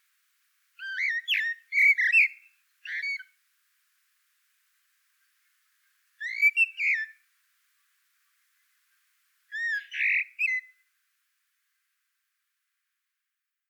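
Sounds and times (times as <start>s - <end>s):
common blackbird singing: 0.8s - 3.3s, 6.2s - 7.2s, 9.5s - 10.7s.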